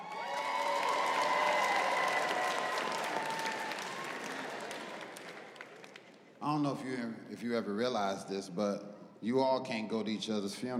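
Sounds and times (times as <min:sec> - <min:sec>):
crowd clapping and cheering: 0:00.0 - 0:06.4
speech: 0:06.5 - 0:10.7.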